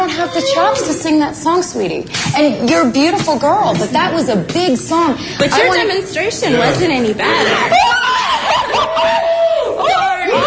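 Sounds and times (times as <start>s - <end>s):
women judges shrieking and yelling at a TV singing audition: 0.0s - 1.2s, 7.6s - 10.4s
speech: 0.2s - 8.0s
women judges laughing: 7.2s - 9.7s.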